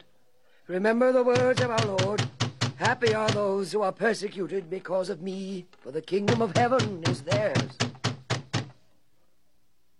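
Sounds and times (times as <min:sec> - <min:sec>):
speech: 0:00.7 - 0:08.0
guards knocking firmly on a door: 0:01.3 - 0:03.6, 0:06.2 - 0:08.8.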